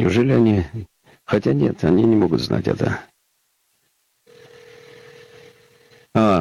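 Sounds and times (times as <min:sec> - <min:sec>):
speech: 0:00.0 - 0:03.1, 0:06.2 - 0:06.3
radio studio telephone line tone as a call is placed: 0:04.3 - 0:06.1.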